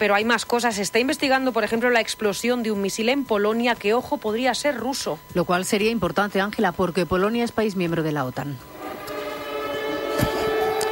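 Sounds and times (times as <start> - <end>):
speech: 0.0 - 8.8
noise: 0.0 - 10.9
air raid sirens sounding over the city of Lublin Poland: 8.6 - 10.9.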